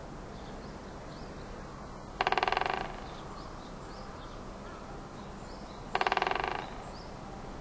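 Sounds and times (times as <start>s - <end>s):
background hiss: 0.0s - 7.6s
great spotted woodpecker drumming in Sapporo: 2.2s - 3.2s, 5.9s - 6.9s.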